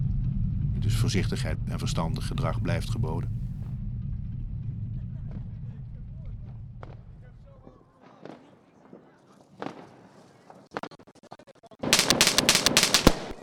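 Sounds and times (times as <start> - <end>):
low rumbling drone: 0.0 - 6.8
speech: 0.9 - 3.4
New Year's Eve fireworks exploding with bangs and crackles: 8.1 - 10.7, 11.8 - 13.4.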